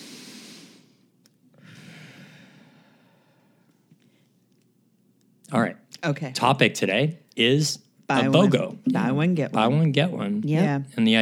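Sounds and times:
deep breathing: 0.0 - 4.4
speech: 5.5 - 11.1.

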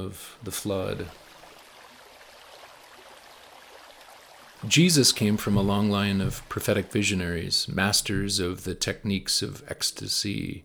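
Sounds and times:
speech: 0.0 - 1.2, 4.6 - 10.6
steady continuous rush of flowing water: 0.0 - 8.4.

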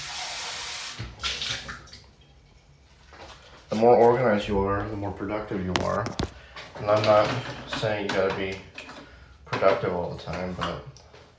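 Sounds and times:
running tap water splashing as a mug is rinsed: 0.0 - 2.1
speech: 3.7 - 8.7, 9.6 - 10.9.

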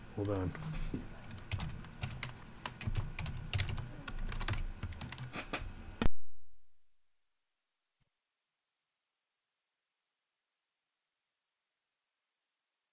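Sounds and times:
speech: 0.2 - 1.2
typing on a computer keyboard: 1.2 - 5.4.

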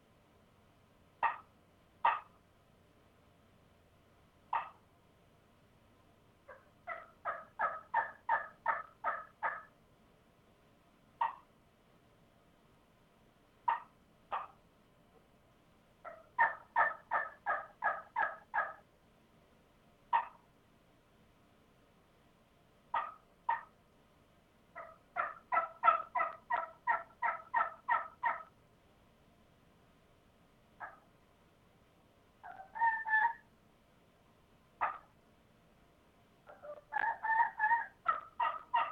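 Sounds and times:
soft turkey yelps played on a cane call: 1.2 - 2.4, 4.5 - 4.8, 6.5 - 9.7, 11.2 - 11.5, 13.7 - 14.6, 16.0 - 18.8, 20.1 - 20.4, 22.9 - 23.8, 24.8 - 28.5, 30.8 - 31.1, 32.4 - 33.5, 34.8 - 35.1, 36.5 - 38.8.

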